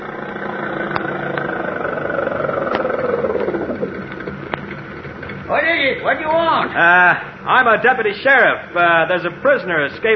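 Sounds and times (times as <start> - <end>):
car engine running: 0.0 - 5.5
speech: 5.8 - 10.1.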